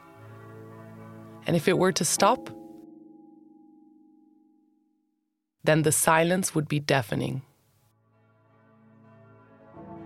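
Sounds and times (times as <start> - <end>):
speech: 1.5 - 2.6, 5.6 - 7.5
church bells ringing in Rome near the Vatican: 1.5 - 5.0.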